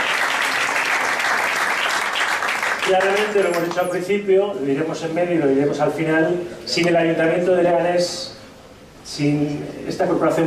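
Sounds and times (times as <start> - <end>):
audience applause at a local town event: 0.0 - 3.7
speech: 2.9 - 8.4, 9.1 - 10.4.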